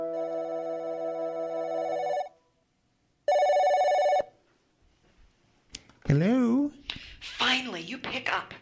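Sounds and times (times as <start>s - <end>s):
landline telephone ringing: 0.1s - 2.3s, 3.3s - 4.3s
person speaking: 6.0s - 8.6s.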